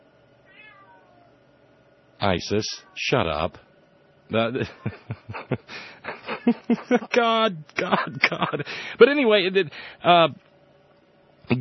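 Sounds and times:
steady low hiss: 0.0 - 11.5
cat giving a short faint meow: 0.4 - 1.3
speech: 2.2 - 3.6, 4.3 - 10.5
laughter: 4.4 - 7.2, 7.8 - 8.8.

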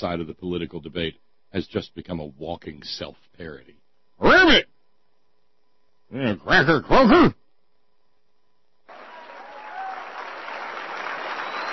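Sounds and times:
speech: 0.0 - 4.7, 6.1 - 7.4
audience applause: 8.9 - 11.7.

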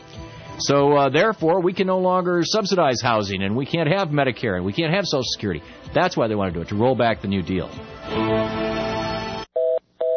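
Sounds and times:
speech: 0.6 - 8.6
telephone tones of a call that cannot be completed: 9.6 - 10.1.

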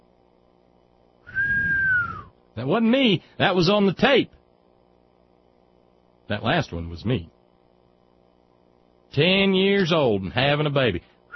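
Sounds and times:
sharp high whistle: 1.3 - 2.3
speech: 2.6 - 4.4, 6.3 - 7.3, 9.1 - 11.3.

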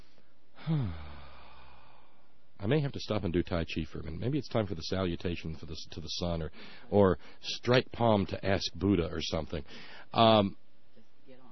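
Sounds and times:
slow deliberate voiced breath out: 0.0 - 2.4, 6.5 - 7.4
speech: 0.7 - 1.0, 2.6 - 10.6.

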